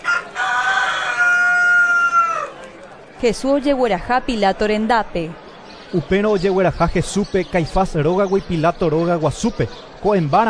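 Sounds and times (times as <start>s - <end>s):
rooster crowing: 0.0s - 2.6s
speech: 3.2s - 10.4s.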